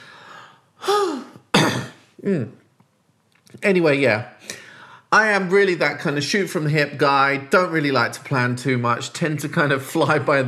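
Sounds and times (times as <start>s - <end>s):
deep breath into a microphone: 0.0s - 1.0s, 4.4s - 5.1s
speech: 2.2s - 2.6s, 3.5s - 4.5s, 5.1s - 10.4s.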